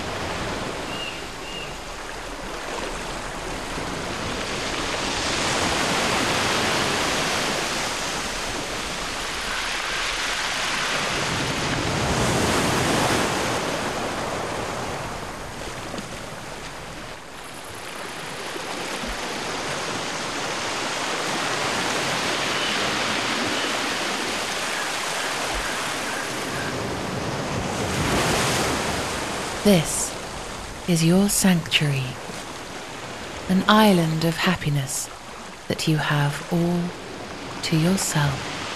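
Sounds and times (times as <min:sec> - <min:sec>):
aquamarine sea waves washing onto the shore in slow broad swells: 0:00.0 - 0:38.7
speech: 0:29.6 - 0:30.0, 0:30.9 - 0:32.2, 0:33.5 - 0:37.0, 0:37.6 - 0:38.6.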